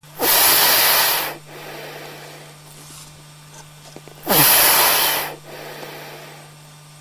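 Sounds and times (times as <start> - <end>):
seal breathing: 0.2 - 2.6, 4.1 - 6.5.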